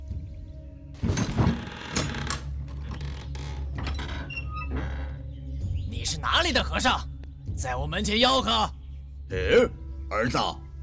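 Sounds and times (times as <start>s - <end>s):
heavy wooden door creaking open on a groaning hinge: 1.0s - 5.4s
speech: 6.0s - 10.6s.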